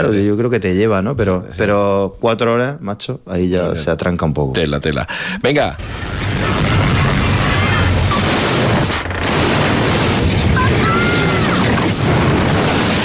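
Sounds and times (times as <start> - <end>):
speech: 0.0 - 6.8
ocean surf with waves rumbling and washing: 5.8 - 13.0.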